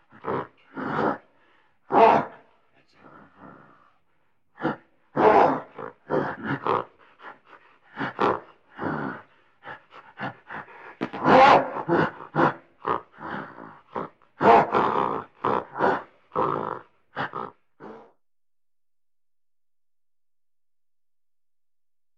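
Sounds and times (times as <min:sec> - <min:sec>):
gorilla giving harsh breathy grunts and pant-like bursts: 0:00.0 - 0:04.0, 0:04.6 - 0:18.2
gorilla loud rasping calls: 0:01.9 - 0:02.4, 0:04.6 - 0:09.2, 0:10.2 - 0:18.2.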